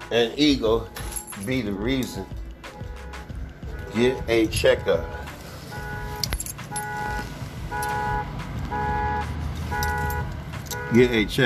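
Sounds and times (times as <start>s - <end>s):
speech: 0.1s - 2.4s, 3.9s - 5.2s, 10.9s - 11.4s
car alarm chirping: 2.7s - 11.3s.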